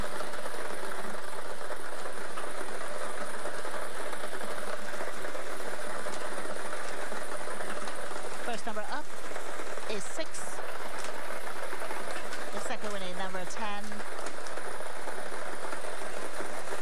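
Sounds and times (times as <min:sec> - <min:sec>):
lottery draw machine spinning the balls for a daily numbers game: 0:00.0 - 0:16.7.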